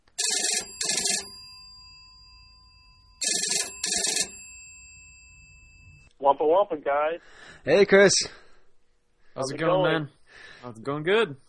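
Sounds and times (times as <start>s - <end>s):
telephone ringing in double bursts of bright buzzy trills: 0.0s - 6.1s
speech: 6.3s - 8.4s, 9.4s - 11.4s.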